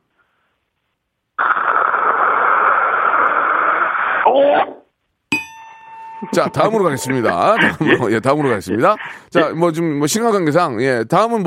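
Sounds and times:
voice imitating dental suction poking the throat: 1.4 - 4.3
speech: 4.3 - 4.8, 6.3 - 11.4
ringing chime: 5.3 - 8.0
laughter: 6.2 - 9.5.

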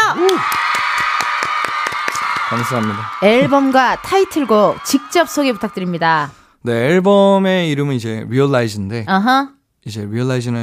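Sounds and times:
small group clapping in a studio: 0.0 - 6.3
speech: 0.2 - 0.6, 2.5 - 10.6.

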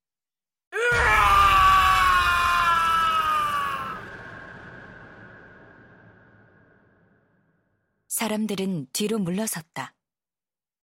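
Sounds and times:
man screaming loudly amid a crowd of onlookers: 0.8 - 4.0
speech: 8.2 - 10.0.

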